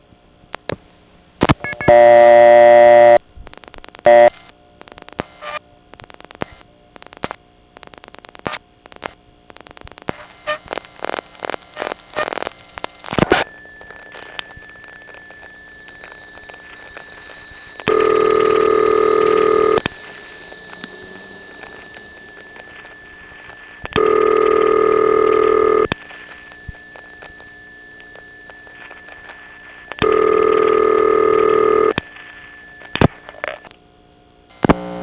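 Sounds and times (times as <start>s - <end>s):
rapid trains of telephone dial-pulse clicks: 1.4s - 3.2s, 3.8s - 33.8s
telephone tone bursts of a call dialed into a crossbar No. 1 exchange: 1.6s - 3.2s, 4.0s - 4.4s, 11.8s - 33.7s
continuous high telephone tone: 10.2s - 34.6s.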